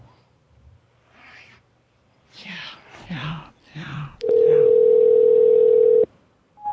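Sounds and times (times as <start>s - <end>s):
low whispery talk: 2.3s - 4.7s
telephone ringing tone while a number is called: 4.3s - 6.1s.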